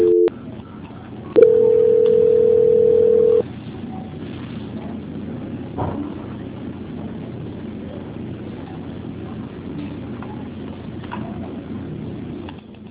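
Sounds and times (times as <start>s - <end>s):
telephone line tone while a call is transferred: 0.0s - 0.4s, 1.4s - 3.4s.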